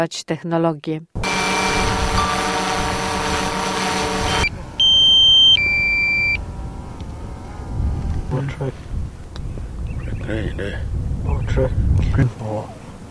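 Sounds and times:
speech: 0.0s - 1.4s, 8.6s - 8.8s, 10.3s - 12.8s
drone buzzing in flight over the coast of Yalata South Australia: 1.2s - 9.8s
electronic beeps: 4.3s - 6.4s.

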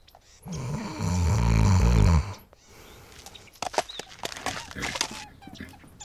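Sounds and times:
person imitating a long rumbling snore: 0.4s - 2.4s.

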